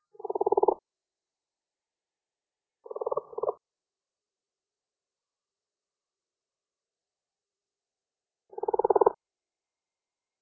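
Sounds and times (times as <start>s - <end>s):
Brown's leopard frog Lithobates brownorum rattling croaks: 0.1s - 0.8s, 2.8s - 3.6s, 8.5s - 9.2s.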